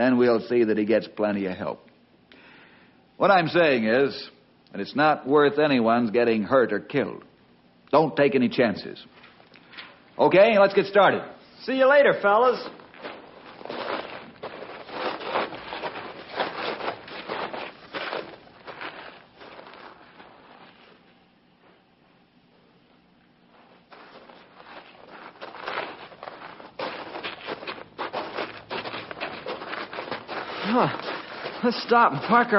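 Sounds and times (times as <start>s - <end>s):
speech: 0.0s - 1.9s, 3.2s - 7.3s, 7.9s - 9.2s, 10.2s - 12.8s, 31.7s - 32.5s
footsteps of people walking on a long hike: 12.4s - 22.2s, 23.4s - 32.5s
rustling: 12.4s - 22.2s, 23.3s - 32.5s.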